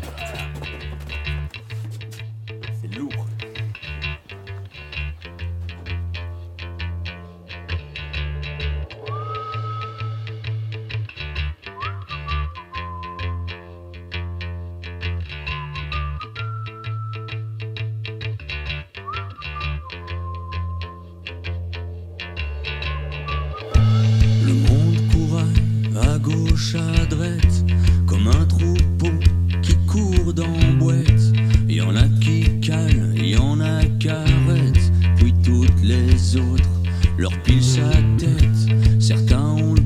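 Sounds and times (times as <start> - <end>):
effects-laden guitar textures: 1.3 - 39.8
gliding lead melody: 21.1 - 26.0
heavy thumping bass line: 21.6 - 39.8
full-band song from an album: 22.5 - 39.8
speech: 26.6 - 27.6.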